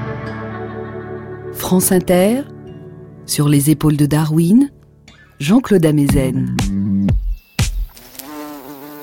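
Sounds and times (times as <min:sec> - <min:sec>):
speech: 0:01.7 - 0:02.5, 0:03.3 - 0:04.8, 0:05.4 - 0:07.2
bumblebee buzzing: 0:07.0 - 0:09.0.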